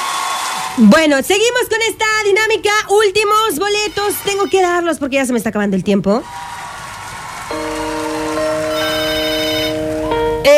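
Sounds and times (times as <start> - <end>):
speech: 0.8 - 6.5
WhatsApp incoming call electronic ringtone: 7.5 - 10.0.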